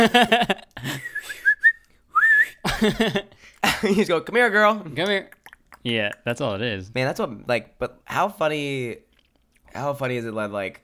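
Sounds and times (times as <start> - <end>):
speech: 0.0 - 1.0, 2.8 - 9.1, 9.7 - 10.8
person whistling to call a horse: 0.9 - 2.6.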